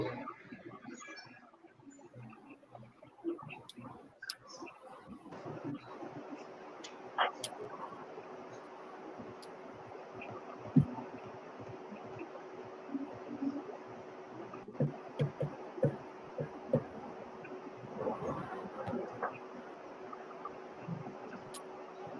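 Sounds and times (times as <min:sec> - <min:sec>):
faint murmuring: 0:00.0 - 0:22.1
low hum: 0:00.0 - 0:22.1
computer keyboard typing: 0:14.7 - 0:17.0.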